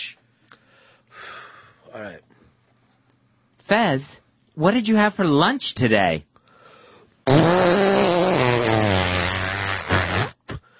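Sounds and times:
speech: 0:02.0 - 0:02.4, 0:03.7 - 0:06.3
long loud buzzy fart noise: 0:07.3 - 0:10.6.

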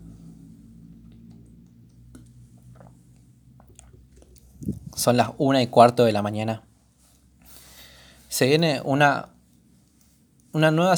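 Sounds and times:
mouth sounds of person drinking water with clicks and gulps: 0:01.1 - 0:05.1
speech: 0:05.0 - 0:06.7, 0:08.4 - 0:09.3, 0:10.5 - 0:10.9.

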